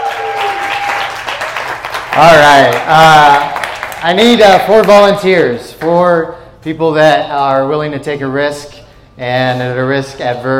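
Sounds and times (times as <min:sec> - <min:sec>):
audience applause at a presentation: 0:00.0 - 0:04.1
speech: 0:02.2 - 0:10.5.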